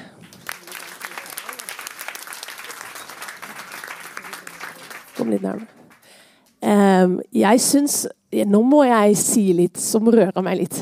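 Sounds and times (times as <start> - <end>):
audience applauding in church: 0.0 - 6.1
speech: 5.2 - 5.8, 6.7 - 10.8.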